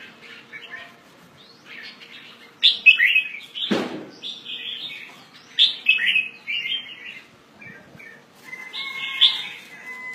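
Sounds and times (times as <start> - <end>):
Red-whiskered bulbul Pycnonotus jocosus calls: 0.0 - 8.2
loud broadband thump: 3.7 - 4.1.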